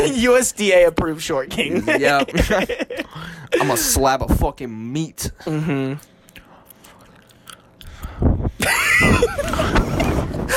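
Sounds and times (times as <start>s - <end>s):
speech: 0.1s - 6.1s, 8.2s - 10.0s
laughter: 1.6s - 3.9s, 8.6s - 10.5s
gum chewed intensely with wet smacking mouth sounds: 6.0s - 8.3s.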